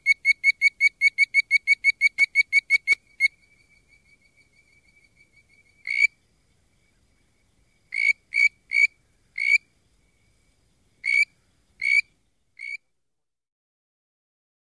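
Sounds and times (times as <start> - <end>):
bird-voiced treefrog Hyla avivoca giving quick whistled notes: 0.0 - 6.2, 7.9 - 9.7, 11.0 - 12.9
faint steady tone: 0.0 - 13.2.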